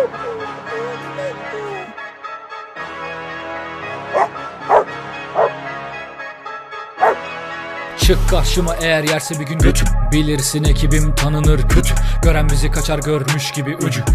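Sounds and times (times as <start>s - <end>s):
dog soft whine: 0.0s - 1.9s, 4.2s - 5.5s, 7.0s - 7.2s
droning musical background: 0.0s - 13.3s
dog barking: 4.1s - 5.6s, 7.0s - 7.2s
speech: 8.1s - 14.1s.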